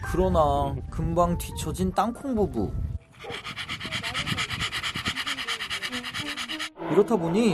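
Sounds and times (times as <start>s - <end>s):
speech: 0.1s - 3.5s, 6.9s - 7.5s
dog panting heavily on a countryside walk: 3.0s - 6.8s.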